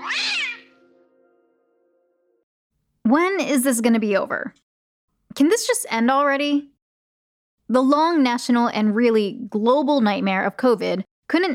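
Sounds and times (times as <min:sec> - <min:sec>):
cat meowing: 0:00.0 - 0:00.8
speech: 0:03.1 - 0:04.7, 0:05.4 - 0:06.7, 0:07.7 - 0:11.5.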